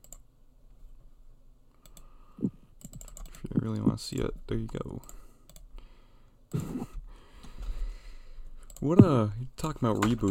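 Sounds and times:
computer mouse clicking: 0.0s - 0.2s, 1.8s - 2.1s, 2.8s - 3.4s, 4.6s - 5.7s, 8.6s - 8.9s, 9.9s - 10.2s
speech: 3.7s - 5.2s, 8.8s - 10.2s.

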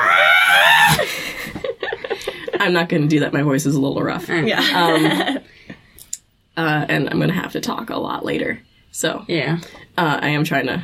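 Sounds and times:
voice imitating a robot droid's scream: 0.0s - 1.0s
speech: 2.6s - 5.4s, 6.6s - 10.8s.

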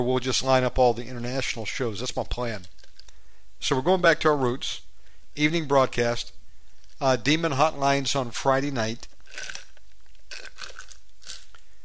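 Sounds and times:
speech: 0.0s - 2.8s, 3.6s - 6.4s, 7.0s - 9.6s
person slurping coconut water: 9.2s - 11.6s.

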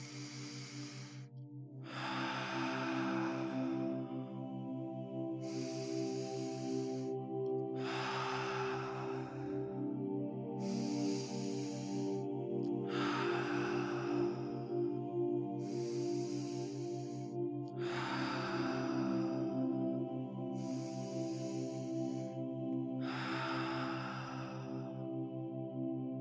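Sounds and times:
forceful breaths in a breathing exercise: 0.0s - 15.0s, 15.6s - 25.1s
sustained humming musical drone: 0.0s - 26.2s.

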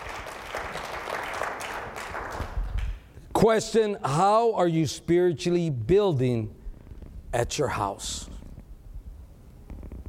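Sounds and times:
audience clapping hands as an offering to the Lord: 0.0s - 3.0s
speech: 3.4s - 6.6s, 7.3s - 8.3s.

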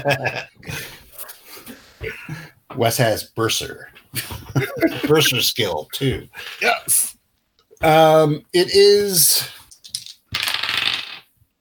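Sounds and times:
speech: 0.0s - 0.6s, 2.8s - 6.7s, 7.8s - 9.6s
laughter: 0.0s - 0.7s, 4.2s - 5.5s
coins dropping and clattering as they are counted out: 9.7s - 11.3s.

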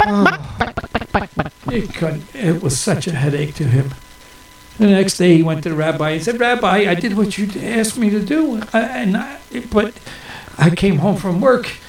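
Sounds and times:
person imitating chicken squawks and clucks: 0.0s - 1.7s
speech: 1.7s - 4.0s, 4.8s - 11.8s.

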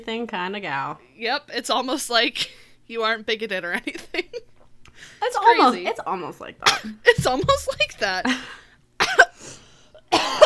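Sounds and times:
speech: 0.0s - 4.3s, 5.1s - 9.2s
coughing into a microphone: 6.6s - 7.0s, 9.0s - 9.4s, 10.1s - 10.4s.

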